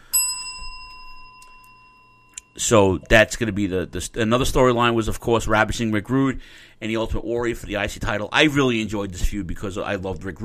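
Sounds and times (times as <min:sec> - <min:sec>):
bell struck with a bright metallic ring: 0:00.0 - 0:03.9
speech: 0:02.6 - 0:10.4.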